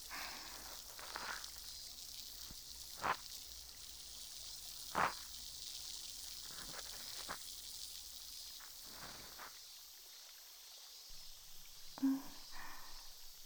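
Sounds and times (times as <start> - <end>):
soft crackles and pops from a soaked cotton swab: 0.0 - 10.1
faint fizzing hiss from a soaked cotton swab tip: 0.0 - 13.4.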